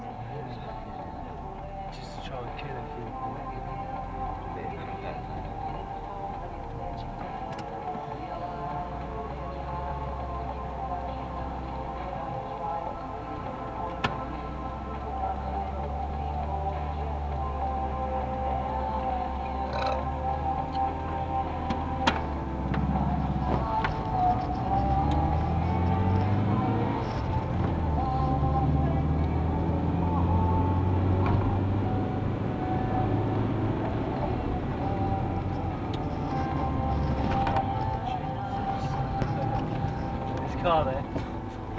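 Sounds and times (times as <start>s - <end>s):
car engine and tire rumble driving along a road: 0.0s - 41.7s
speech: 2.3s - 5.4s.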